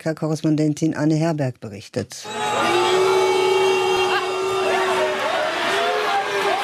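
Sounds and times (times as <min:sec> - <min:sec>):
speech: 0:00.0 - 0:02.8
large Brazilian football stadium crowd roaring and booing at a World Cup match: 0:02.2 - 0:06.6
football fans clapping in a stadium: 0:02.3 - 0:06.6.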